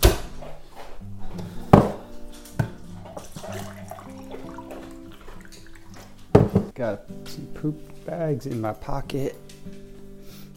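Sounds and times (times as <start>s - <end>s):
tap water filling a glass: 3.1s - 6.7s
glass clinks and thunks from handling: 6.3s - 6.7s
speech: 6.8s - 9.8s.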